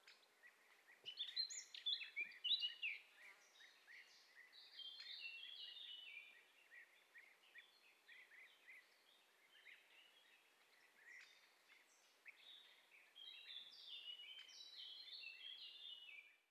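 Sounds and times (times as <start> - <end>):
birds at a wasteland forest edge by an old quarry lake: 0.0 - 16.4.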